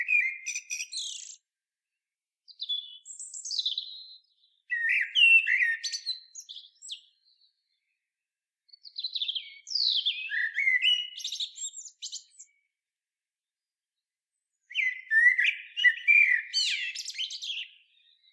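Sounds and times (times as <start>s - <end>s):
common blackbird Turdus merula singing mellow phrases: 0.0s - 1.4s, 2.5s - 7.8s, 8.7s - 12.6s, 14.6s - 18.3s.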